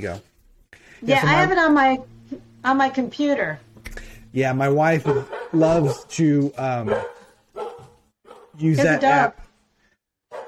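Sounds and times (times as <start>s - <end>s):
speech: 0.0s - 0.3s, 1.0s - 3.6s, 4.3s - 7.2s, 8.6s - 9.4s
dog barking at someone at the door: 5.0s - 6.1s, 6.8s - 8.6s.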